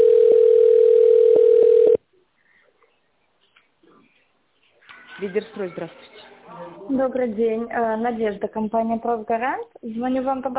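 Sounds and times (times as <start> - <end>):
telephone line tone while call is transferred: 0.0 - 2.0
speech: 5.2 - 10.5.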